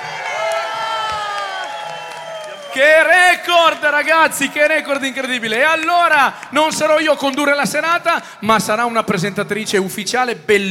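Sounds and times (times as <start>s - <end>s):
crowd of 600 people at a concert evening shouting and cheering: 0.0s - 7.4s
speech: 2.8s - 10.6s.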